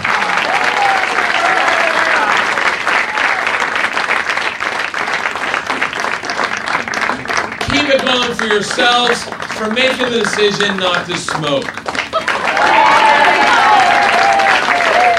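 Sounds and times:
faint cheers: 0.0s - 3.6s, 12.1s - 15.1s
large crowd applauding loudly: 0.0s - 15.1s
speech: 8.4s - 11.8s.

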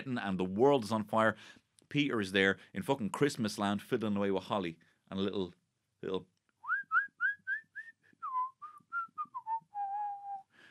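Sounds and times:
speech: 0.0s - 6.3s
person whistling a soft lilting tune while working on cakes: 6.6s - 10.5s.

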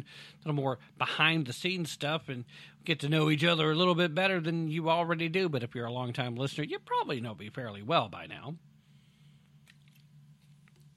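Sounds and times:
speech: 0.0s - 8.7s
steady low electrical hum: 0.0s - 10.9s
person sipping and swallowing a drink: 9.4s - 10.9s.

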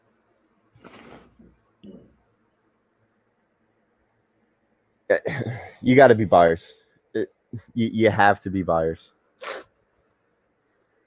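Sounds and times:
speech: 5.1s - 9.6s
sneeze: 9.4s - 9.7s.

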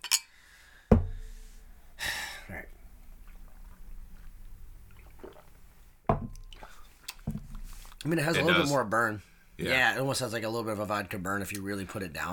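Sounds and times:
loud breathy gasp: 2.0s - 2.6s
person gulping hard seltzer from a can: 2.6s - 5.6s, 6.3s - 7.2s
speech: 8.0s - 12.3s.

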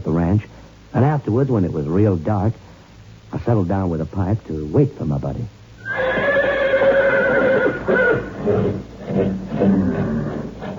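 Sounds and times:
speech: 1.2s - 2.7s, 3.3s - 6.1s
faint shuffling hoof movement of horses: 5.8s - 10.7s
restless horses neighing at a ranch at night: 5.8s - 10.7s.

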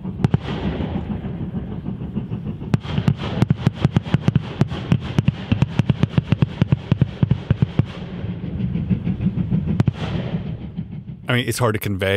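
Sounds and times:
railway track torpedoes detonating under a train's wheels: 0.0s - 11.3s
steady rumble of a passing train: 0.0s - 12.1s
speech: 11.3s - 12.1s.

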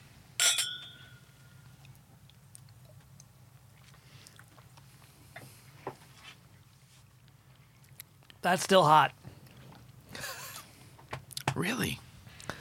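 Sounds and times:
glasses of rye whiskey clinking in a toast: 0.4s - 1.5s
speech: 8.4s - 9.2s, 11.6s - 12.0s.

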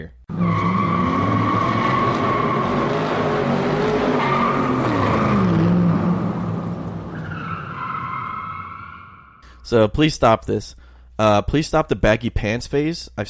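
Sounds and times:
speech: 0.0s - 0.4s, 9.7s - 13.2s
car engine roaring: 0.3s - 9.4s
drawn-out car tire skid screeching: 0.3s - 9.4s.

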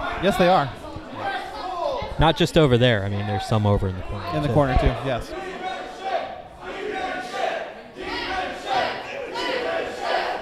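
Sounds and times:
speech: 0.2s - 0.8s, 2.2s - 5.4s
large crowd chanting at a wrestling match: 4.5s - 10.3s.

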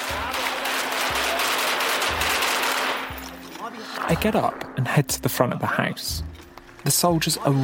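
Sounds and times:
sustained rapid gunfire: 0.0s - 3.2s
speech: 4.1s - 7.6s.

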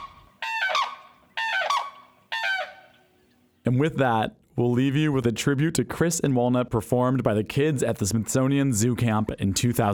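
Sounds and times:
female bird screeching calls to her mate: 0.0s - 3.1s
faint noise: 0.0s - 9.9s
speech: 3.7s - 9.9s.

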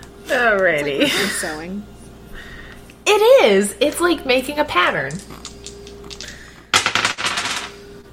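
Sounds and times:
speech: 0.3s - 2.5s, 3.1s - 5.4s
two dice rolling on a tabletop: 5.1s - 7.8s.

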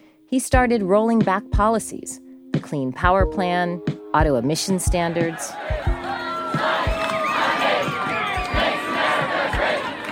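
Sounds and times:
speech: 0.3s - 5.9s
large crowd chanting and shouting at a protest march outdoors: 5.0s - 10.1s.

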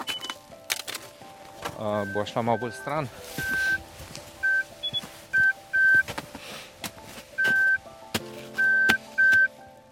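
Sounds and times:
speech: 1.8s - 3.7s
avalanche transceiver beeping during a search: 1.8s - 6.1s, 7.4s - 7.9s, 8.6s - 9.5s.

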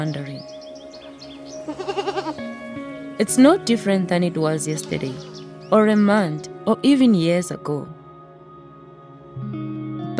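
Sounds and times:
speech: 0.0s - 0.6s, 1.6s - 8.0s
goat bleating: 1.6s - 2.5s.

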